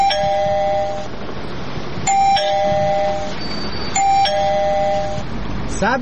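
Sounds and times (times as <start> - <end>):
electronic doorbell chime at a house door: 0.0 - 1.1, 2.1 - 5.3.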